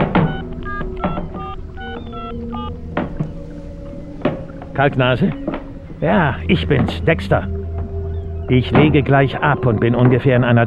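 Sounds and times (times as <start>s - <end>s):
mobile phone keypad tones as a man dials a number: 0.0s - 2.7s
soft thumps: 0.0s - 9.2s
speech: 4.8s - 7.6s, 8.5s - 10.6s.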